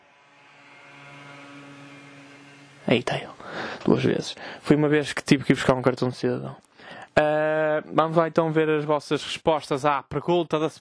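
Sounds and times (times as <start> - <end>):
motorcycle engine droning as it passes outside: 0.0 - 4.3
speech: 2.8 - 10.7.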